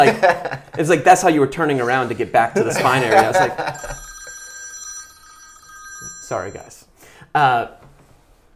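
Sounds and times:
laughter: 0:00.0 - 0:00.8, 0:02.6 - 0:03.9
speech: 0:00.0 - 0:04.0, 0:06.3 - 0:06.8, 0:07.4 - 0:07.8
phone ringing with electronic trill: 0:02.8 - 0:07.0.

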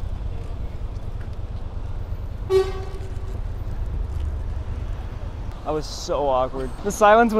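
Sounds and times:
steady low traffic rumble: 0:00.0 - 0:07.3
car horn honk: 0:02.5 - 0:03.4
speech: 0:05.7 - 0:07.3.

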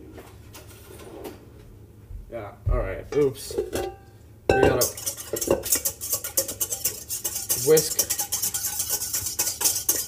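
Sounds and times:
speech: 0:02.3 - 0:04.0, 0:07.7 - 0:08.0
whisk clinking and scraping against a bowl of flatbread pizza ingredients: 0:04.7 - 0:10.0.

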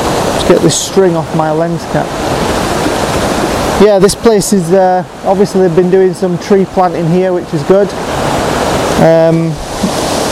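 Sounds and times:
rushing waterfall: 0:00.0 - 0:10.3
speech: 0:00.5 - 0:02.5, 0:03.8 - 0:08.2, 0:09.0 - 0:09.9.

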